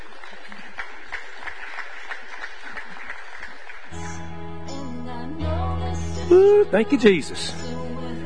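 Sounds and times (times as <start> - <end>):
audience applause: 0.0 - 4.2
speech: 6.3 - 7.7.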